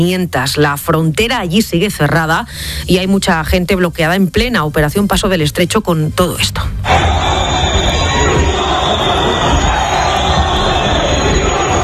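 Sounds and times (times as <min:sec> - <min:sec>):
speech: 0:00.0 - 0:07.1
large packed outdoor crowd in Ceuta booing and shouting: 0:06.9 - 0:11.8.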